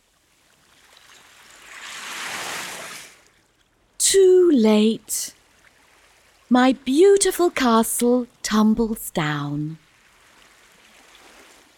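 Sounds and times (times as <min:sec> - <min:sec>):
ocean wave washing up on a sandy beach: 0:01.5 - 0:03.3
speech: 0:04.1 - 0:05.4, 0:06.5 - 0:09.8.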